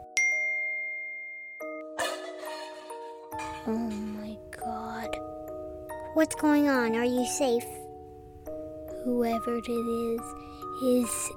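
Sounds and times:
doorbell chiming: 0.1s - 2.0s
laughter: 2.0s - 3.7s
speech: 3.6s - 5.2s, 6.2s - 7.8s, 9.0s - 11.3s.

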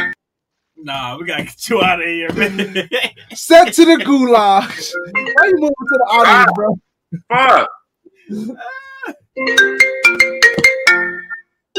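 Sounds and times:
speech: 0.8s - 10.4s
laughter: 2.3s - 4.1s
phone ringtone with synthetic melody over a rhythmic beat: 4.7s - 6.6s, 9.4s - 11.5s.

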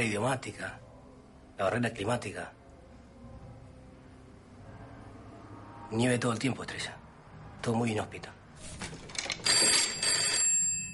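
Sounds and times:
speech: 0.0s - 0.9s, 1.6s - 2.6s, 5.9s - 7.0s, 7.6s - 9.5s
telephone bell ringing in a room: 9.1s - 10.9s.

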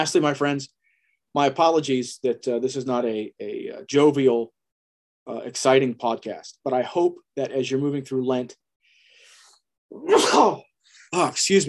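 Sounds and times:
speech: 0.0s - 4.6s, 5.3s - 8.6s, 9.9s - 11.6s
person sneezing forcefully: 9.9s - 10.7s.

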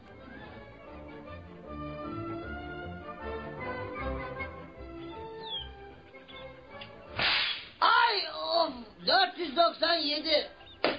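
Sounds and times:
music: 0.0s - 10.9s
whip lashes cracking as a man whips himself: 7.1s - 7.8s.

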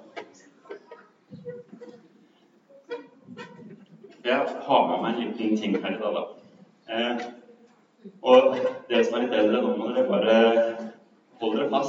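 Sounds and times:
handling noise from a microphone being adjusted: 1.3s - 2.2s, 2.9s - 4.2s
speech: 4.3s - 7.4s, 8.2s - 11.8s.

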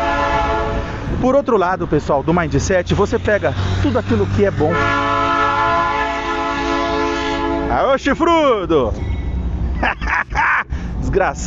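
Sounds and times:
passing train horn blaring: 0.0s - 1.2s, 4.7s - 7.9s
low rumble of passing train: 0.0s - 11.4s
speech: 1.2s - 5.1s, 7.8s - 9.1s, 11.1s - 11.4s
laughter: 8.9s - 10.9s.

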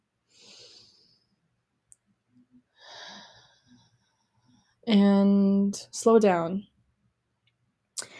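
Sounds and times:
slow wheezy deep breath in and out: 0.3s - 1.4s, 2.7s - 4.8s
speech: 4.9s - 6.7s.

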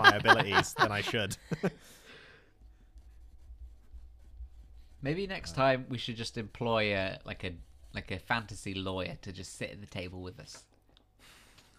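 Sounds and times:
laughter: 0.0s - 1.8s
low hum: 0.0s - 11.7s
speech: 0.2s - 2.0s, 5.0s - 10.7s
pen scratching on paper: 2.8s - 5.5s.

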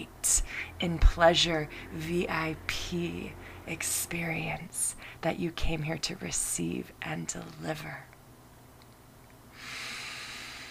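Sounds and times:
speech: 0.3s - 8.1s
long deep breath during a guided tantric awakening session: 9.5s - 10.6s.

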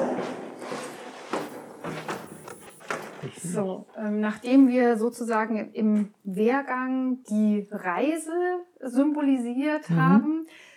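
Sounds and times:
footsteps of people passing from an exhibition into its study hall: 0.0s - 4.7s
door opening with soft thuds and clicks: 1.3s - 3.5s
speech: 3.2s - 10.6s.

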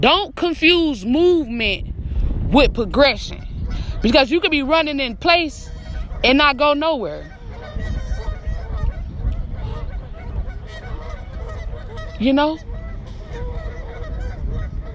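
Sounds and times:
speech: 0.0s - 1.9s, 2.5s - 3.4s, 4.0s - 7.4s, 12.2s - 12.7s
low rumble of noise: 0.0s - 14.9s
duck honking: 3.3s - 14.9s.

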